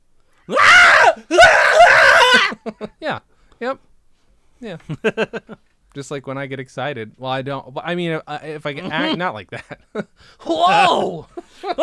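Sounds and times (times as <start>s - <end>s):
speech: 0.5s - 0.7s, 2.3s - 3.9s, 4.6s - 11.8s
person imitating a musician's signature scream: 0.5s - 2.6s, 10.4s - 11.8s.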